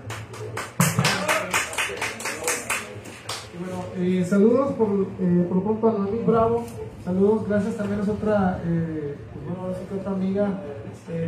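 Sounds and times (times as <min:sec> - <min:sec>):
applause from a small group: 0:00.0 - 0:03.5
faint low murmur of voices: 0:00.0 - 0:11.2
speech: 0:04.0 - 0:11.2.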